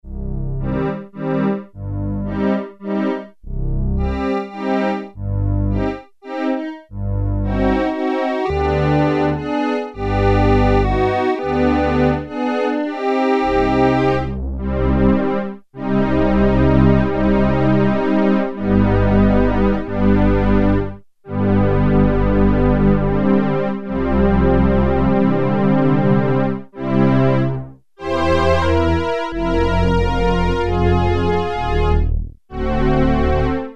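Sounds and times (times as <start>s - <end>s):
Sequential Circuits Prophet-5 Ver.3 factory patch low strings: 0.0s - 33.7s.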